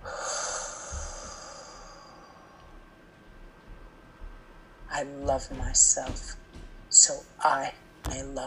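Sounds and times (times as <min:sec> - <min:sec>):
deep breath: 0:00.0 - 0:02.8
speech: 0:05.0 - 0:06.4, 0:07.0 - 0:08.4.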